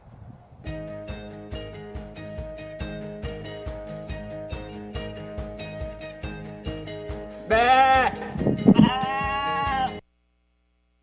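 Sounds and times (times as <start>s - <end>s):
speech: 7.5s - 7.8s
single sheep bleating with a loud wavering baa: 7.5s - 10.0s.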